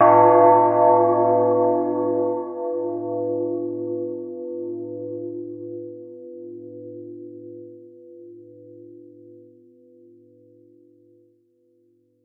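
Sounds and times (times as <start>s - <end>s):
church bell ringing: 0.0s - 7.6s.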